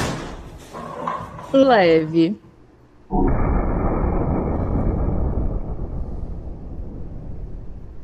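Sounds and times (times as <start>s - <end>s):
speech: 1.5s - 2.4s, 3.1s - 3.3s
bomb exploding in a prank: 3.1s - 8.0s.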